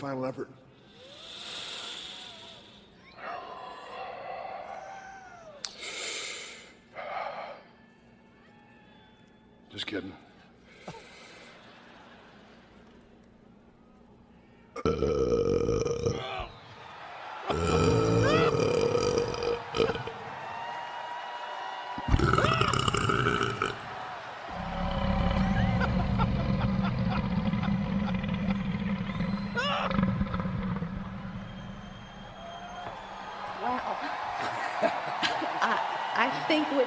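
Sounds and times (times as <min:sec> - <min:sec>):
speech: 0:00.0 - 0:00.7, 0:09.8 - 0:10.3
laughter: 0:10.8 - 0:13.3, 0:22.0 - 0:30.0, 0:32.2 - 0:36.7
long loud deliberate gravelly burps: 0:14.8 - 0:16.5, 0:17.5 - 0:20.3, 0:22.0 - 0:31.7.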